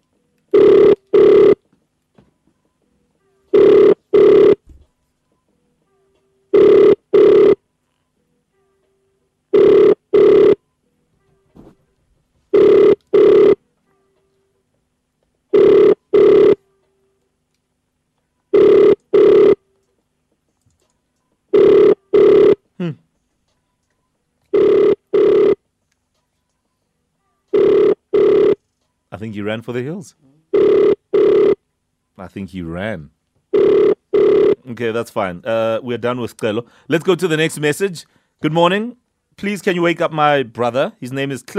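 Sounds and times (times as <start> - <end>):
double-pulse telephone ringback tone on an outgoing call: 0.5 - 1.6, 3.5 - 4.6, 6.5 - 7.6, 9.5 - 10.6, 12.5 - 13.6, 15.5 - 16.6, 18.5 - 19.6, 21.5 - 22.6, 24.5 - 25.6, 27.5 - 28.6, 30.5 - 31.6, 33.5 - 34.6
speech: 22.8 - 23.0, 29.2 - 30.3, 32.2 - 33.8, 34.6 - 41.5.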